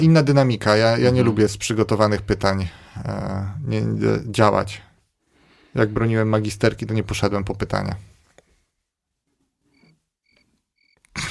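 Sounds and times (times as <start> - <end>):
speech: 0.0 - 4.9, 5.8 - 8.1
cricket chirping: 9.7 - 11.1.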